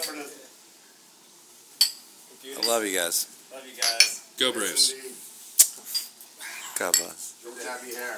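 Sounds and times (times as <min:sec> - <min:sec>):
glasses clinking in a toast: 0:01.8 - 0:02.9, 0:03.8 - 0:04.2, 0:06.9 - 0:07.2
speech: 0:02.4 - 0:05.3, 0:06.8 - 0:08.1.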